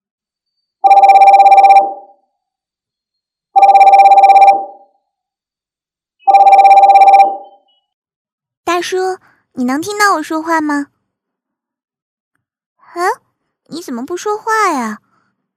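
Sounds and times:
incoming video call ringtone: 0.8s - 2.3s, 3.6s - 5.0s, 6.3s - 7.7s
speech: 8.8s - 11.0s, 13.0s - 15.0s.

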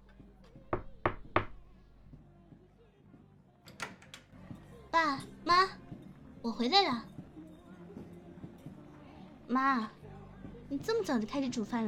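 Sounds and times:
knocks on a door: 0.6s - 1.7s
speech: 5.0s - 5.8s, 6.4s - 7.1s, 9.5s - 10.0s, 10.7s - 11.8s.

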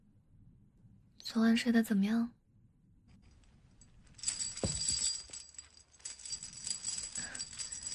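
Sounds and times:
speech: 1.3s - 2.4s
locked metal chain rattling as someone pulls: 3.8s - 7.9s.

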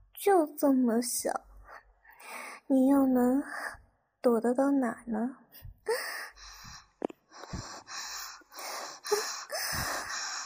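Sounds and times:
speech: 0.2s - 1.5s, 2.2s - 6.1s
heavy breathing with rough breaths and sharp gasps: 5.9s - 10.4s.

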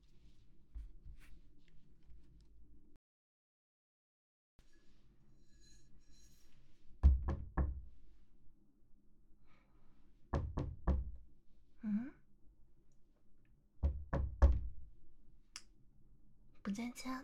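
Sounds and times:
knocking on a door: 7.0s - 7.8s, 10.3s - 11.2s, 13.8s - 14.8s
soft sigh-like vocal sound: 11.8s - 12.2s
speech: 16.7s - 17.2s.

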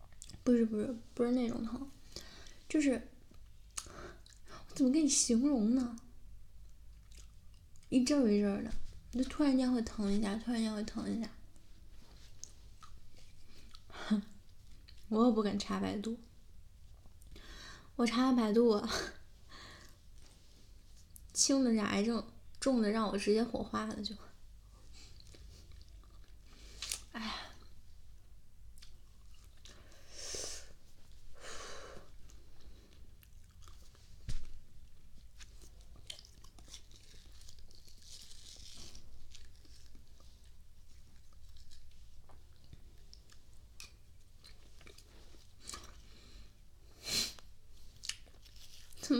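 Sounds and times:
faint hiss: 0.0s - 49.1s
speech: 0.5s - 2.0s, 2.7s - 3.1s, 4.8s - 6.0s, 7.9s - 11.4s, 14.1s - 14.3s, 15.1s - 16.3s, 18.0s - 19.2s, 21.4s - 24.3s
chewing food: 6.7s - 8.0s, 12.4s - 13.9s, 25.1s - 27.0s, 28.8s - 29.8s, 32.3s - 34.2s, 34.9s - 46.1s.

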